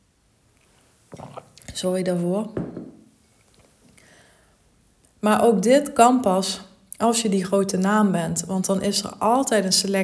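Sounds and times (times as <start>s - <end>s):
soft swallow: 1.1s - 1.8s
wet slurp sipping a drink to soothe a cough: 1.1s - 1.8s
speech: 1.8s - 2.6s, 5.2s - 10.0s.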